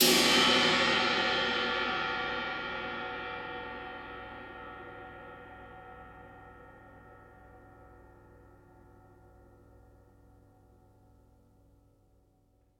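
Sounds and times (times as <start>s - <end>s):
low multi crash cymbal on drum kit: 0.0s - 7.0s.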